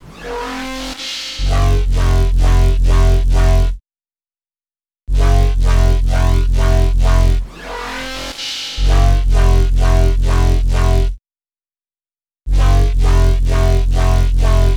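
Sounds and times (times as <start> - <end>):
riddim bass at 130bpm: 1.5 - 3.7, 5.1 - 7.4, 8.8 - 11.1, 12.5 - 14.7.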